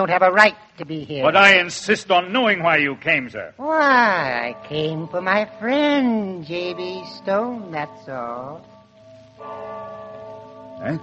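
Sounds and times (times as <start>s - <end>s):
speech: 0.0s - 8.7s, 10.8s - 11.0s
church bell tolling as a passing or funeral bell: 4.1s - 11.0s.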